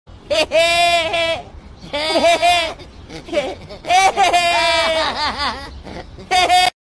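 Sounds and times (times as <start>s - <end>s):
goats bleating like laughter: 0.3s - 5.0s.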